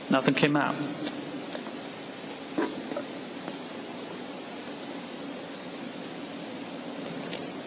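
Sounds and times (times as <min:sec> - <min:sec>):
speech: 0:00.1 - 0:01.2
water squirting out of a squeezed upside-down bottle: 0:07.0 - 0:07.6.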